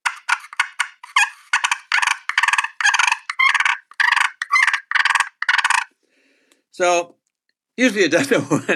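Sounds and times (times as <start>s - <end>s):
person imitating turkey fight calls: 0.3s - 5.9s
speech: 6.8s - 7.2s, 7.8s - 8.7s.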